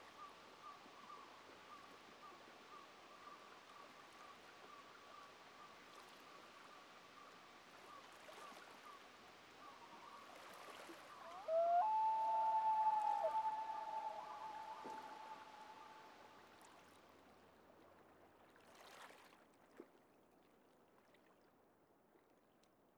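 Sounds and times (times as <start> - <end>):
soft background hiss: 11.2 - 16.3
common loon wail: 11.3 - 16.1.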